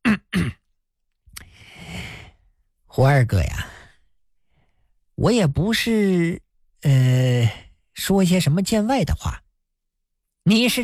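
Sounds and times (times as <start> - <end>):
person coughing: 0.0 - 0.7
speech: 3.0 - 3.8, 5.2 - 9.4, 10.4 - 10.8.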